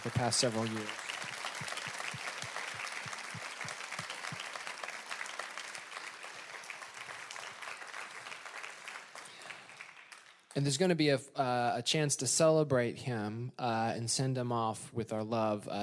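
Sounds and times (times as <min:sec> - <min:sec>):
speech: 0:00.0 - 0:01.0, 0:10.6 - 0:15.8
crowd applauding: 0:00.0 - 0:10.6.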